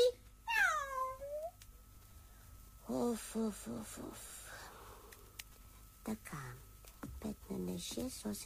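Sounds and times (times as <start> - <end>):
cat giving a drawn-out meow sliding downward in pitch: 0.5 - 1.5
speech: 3.1 - 4.4, 6.0 - 8.4.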